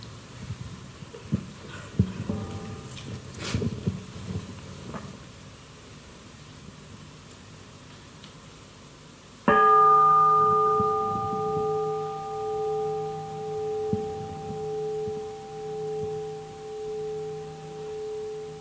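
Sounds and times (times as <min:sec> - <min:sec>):
single bell struck loudly: 0:09.5 - 0:18.5.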